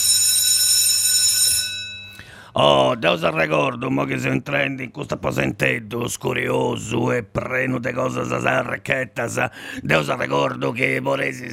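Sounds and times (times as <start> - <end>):
school bell ringing with a bright metallic buzzing tone: 0.0 - 2.3
speech: 2.6 - 11.5.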